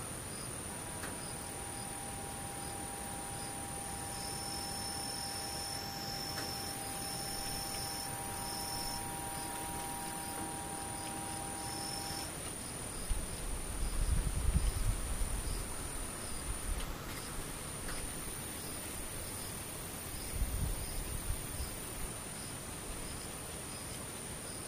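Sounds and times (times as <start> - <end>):
faint low hum: 0.0 - 23.6
insects faintly singing in the distance outdoors: 0.0 - 24.6
soft pulsing chirps: 1.1 - 12.3.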